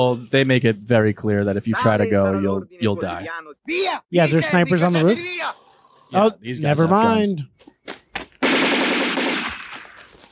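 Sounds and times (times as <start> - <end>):
speech: 0.0 - 8.0
machine gun fire: 8.4 - 10.1.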